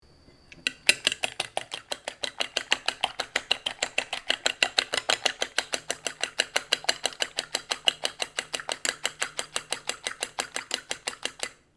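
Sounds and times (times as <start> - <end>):
chef whisking an egg using a fork in a glass bowl: 0.5 - 11.7.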